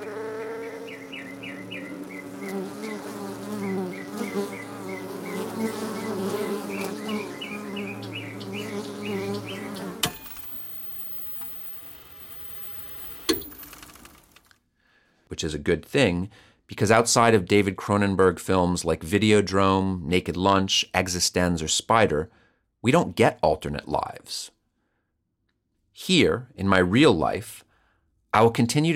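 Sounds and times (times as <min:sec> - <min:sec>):
steady drone of buzzing bees: 0:00.0 - 0:13.3
thin hissing background: 0:00.0 - 0:13.4
chirping birds trilling: 0:00.0 - 0:13.6
speech: 0:15.4 - 0:24.6, 0:26.0 - 0:27.6, 0:28.3 - 0:28.9.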